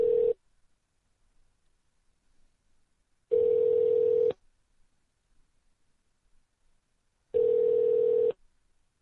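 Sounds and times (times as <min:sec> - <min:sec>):
telephone line ringing while a call is transferred: 0:00.0 - 0:00.4, 0:03.3 - 0:04.4, 0:07.4 - 0:08.4.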